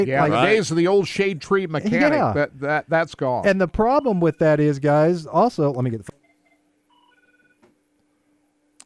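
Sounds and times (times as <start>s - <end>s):
speech: 0.0s - 6.2s
faint electronic telephone tones: 6.2s - 7.6s.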